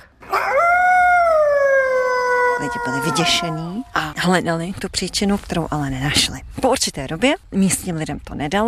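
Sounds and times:
hunting pointer dog howling: 0.2 - 3.8
speech: 2.7 - 8.6.

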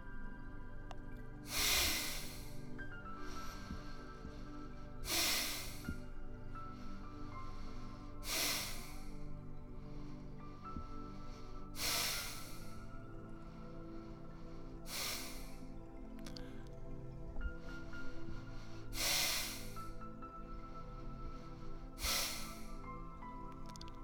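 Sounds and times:
soft sustained musical drone: 0.0 - 24.0
sharp forceful exhalations in a breathing exercise: 1.4 - 9.2, 9.8 - 12.9, 13.9 - 15.7, 17.6 - 20.0, 20.6 - 23.0.

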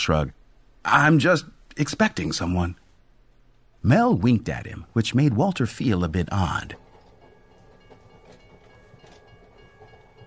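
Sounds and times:
speech: 0.0 - 2.8, 3.8 - 6.8
train rolling slowly along the tracks: 4.2 - 10.2
soft clunks from the train wheels: 6.0 - 10.2.

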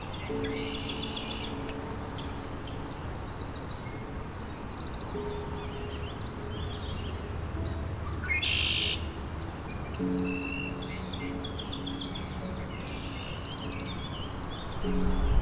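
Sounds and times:
busy outdoor bird chorus: 0.0 - 15.4
steady hiss: 0.0 - 15.4
red-winged blackbird calls: 8.2 - 9.1.

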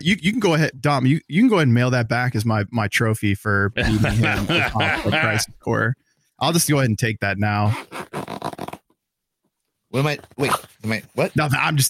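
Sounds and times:
speech: 0.0 - 8.0, 9.9 - 11.8
laughter: 3.8 - 5.6
backpack zipper being pulled open: 7.7 - 8.9, 10.3 - 11.0.

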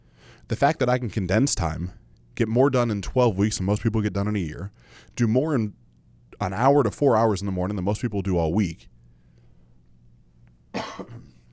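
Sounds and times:
speech: 0.5 - 5.8, 6.4 - 8.9
cough into the microphone: 10.7 - 11.5.

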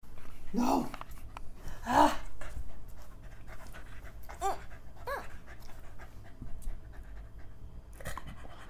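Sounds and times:
speech: 0.5 - 1.0
dog panting excitedly: 2.4 - 8.6.

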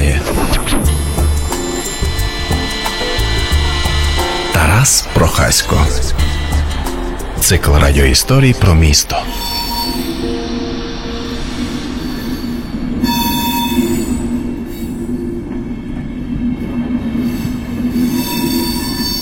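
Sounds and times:
high-speed train rolling rumble under a concrete bridge: 0.0 - 19.2
high-speed train wheels and brakes squealing under a concrete bridge: 0.8 - 7.5, 9.2 - 15.5, 17.2 - 19.2
speech: 4.8 - 6.3, 7.4 - 9.5.

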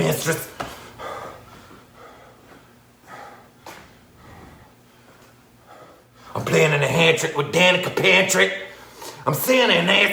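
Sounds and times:
faint low hum: 0.0 - 10.1
speech: 0.1 - 0.6, 6.4 - 10.1
heavy breathy inhales and exhales: 0.3 - 6.5, 8.7 - 9.3.

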